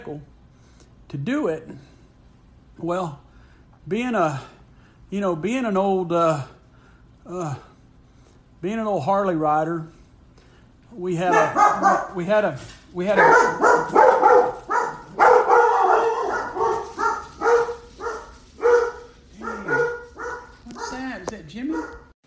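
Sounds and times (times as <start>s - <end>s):
speech: 0.0s - 0.3s, 1.1s - 1.9s, 2.8s - 3.2s, 3.8s - 6.6s, 7.2s - 7.7s, 8.6s - 10.0s, 10.9s - 14.0s
dog barking indoors at home: 11.2s - 12.2s, 13.2s - 22.1s.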